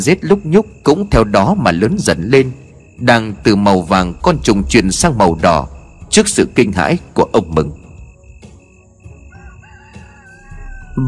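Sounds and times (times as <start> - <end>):
speech: 0.0 - 7.8
rooster crowing: 9.2 - 11.0.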